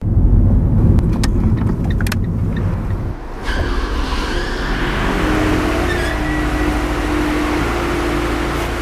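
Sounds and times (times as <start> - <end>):
car engine rumbling, driving up to the automatic barrier of a multi-storey car park: 0.0 - 8.8
sharp clicks: 1.0 - 3.0.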